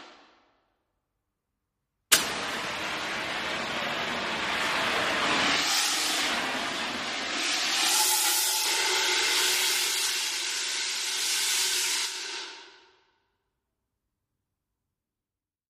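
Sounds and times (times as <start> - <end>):
fire extinguisher burst: 2.1 - 12.9.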